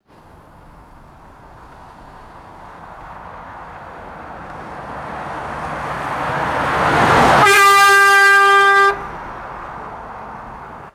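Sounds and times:
fast vehicle passing by: 0.1 - 10.9
vehicle horn: 6.9 - 9.4.

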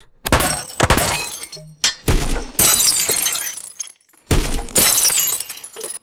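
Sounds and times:
multiple bullet impacts indoors: 0.2 - 3.2, 4.3 - 5.5
glass shattering from bullet impacts indoors: 0.3 - 6.0.

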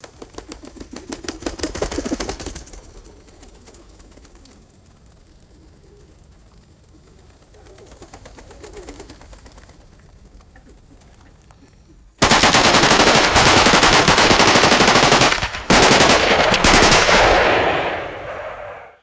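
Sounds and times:
pigeon wings fluttering: 0.0 - 11.5, 12.2 - 17.4
echoing rifle shots: 12.2 - 19.0.

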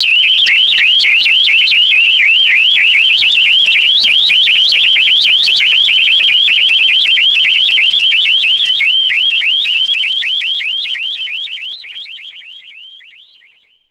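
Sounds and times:
high pitched electronic burglar alarm: 0.0 - 13.5.

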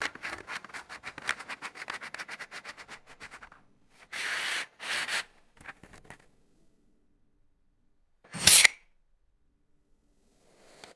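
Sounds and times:
matchbox handling: 0.0 - 6.2, 8.3 - 8.8
match strike: 8.3 - 8.8.

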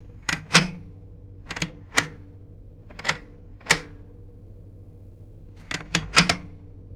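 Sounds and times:
heavy vintage ship telephone receiver pick up: 0.0 - 4.2, 5.6 - 6.8.

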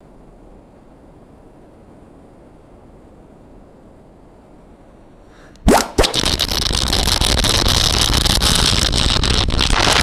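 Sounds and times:
hollow air rushing and popping in a pipe: 5.4 - 10.0.

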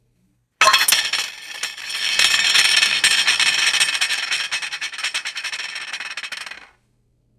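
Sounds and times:
metallic tin lid spinning and settling: 0.6 - 6.7.

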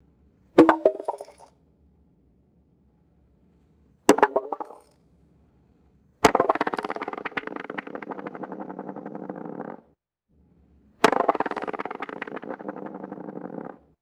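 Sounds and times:
rock dropping and bouncing on concrete: 0.6 - 1.5, 4.1 - 4.8, 6.3 - 9.8, 11.0 - 13.8.

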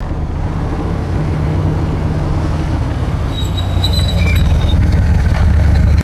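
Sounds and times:
vintage SUV stopping: 0.0 - 6.0
sharp brake squeak of vintage SUV: 2.0 - 6.0.

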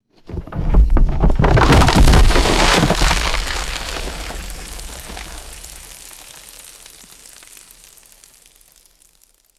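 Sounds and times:
heavy debris and dirt falling on wood: 0.2 - 7.7.

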